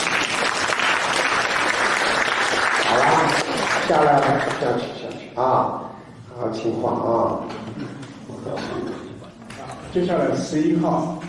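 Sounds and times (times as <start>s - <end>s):
audience applause: 0.0s - 4.6s
speech: 3.9s - 9.0s, 10.0s - 11.2s.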